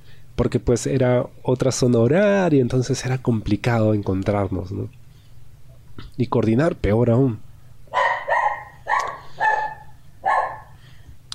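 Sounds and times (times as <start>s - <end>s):
speech: 0.4s - 5.0s, 6.1s - 7.4s
dog barking: 7.9s - 10.8s.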